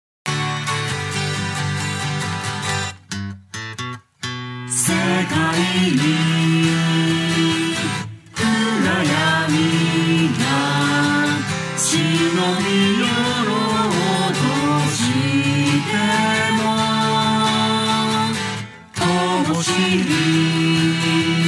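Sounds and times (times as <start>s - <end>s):
guitar: 0.2s - 21.4s
person singing briefly: 4.7s - 21.4s.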